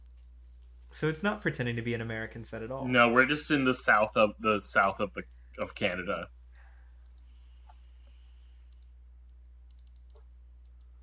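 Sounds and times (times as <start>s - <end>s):
speech: 1.0s - 6.4s
computer mouse clicks: 6.6s - 7.8s, 8.7s - 11.0s.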